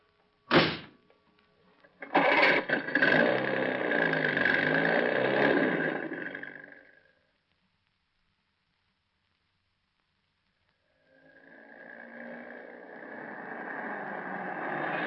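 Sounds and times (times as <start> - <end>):
car engine cranking and revving as the car pulls away: 2.0 - 6.9, 11.1 - 15.0.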